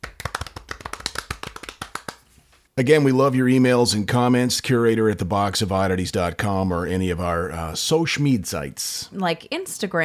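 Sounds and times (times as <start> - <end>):
soft polite hand clapping from one or two people: 0.0 - 2.4
speech: 2.8 - 10.0.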